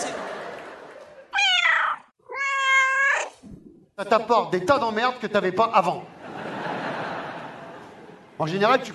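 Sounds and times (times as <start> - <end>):
laughter: 0.0 - 1.3, 6.1 - 8.5
cat meowing: 1.3 - 3.4
speech: 4.0 - 6.2, 8.4 - 8.9.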